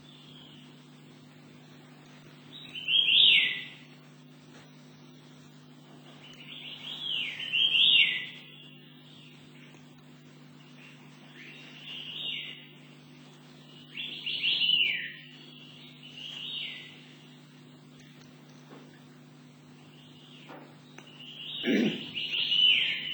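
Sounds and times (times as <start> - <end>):
steady low hum: 0.0 - 23.1
white-eared sibia calling, a Taiwanese bird: 2.5 - 3.9, 6.1 - 9.7, 10.6 - 13.0, 13.6 - 19.1, 19.7 - 23.1.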